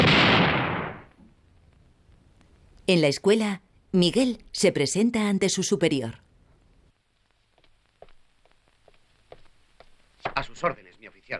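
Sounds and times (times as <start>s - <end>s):
firing squad volley gunfire: 0.0s - 1.1s
speech: 2.9s - 6.2s, 10.4s - 11.3s.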